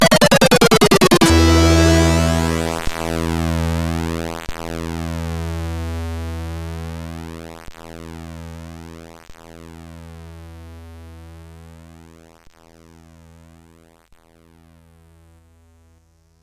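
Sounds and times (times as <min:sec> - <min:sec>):
SID chip music from games: 0:00.0 - 0:03.4.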